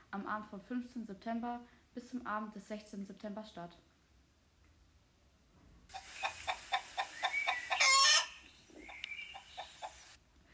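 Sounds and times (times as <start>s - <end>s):
speech: 0.1s - 3.9s
chickens clucking in short calls: 5.9s - 10.2s
loud rooster crow: 7.6s - 8.4s.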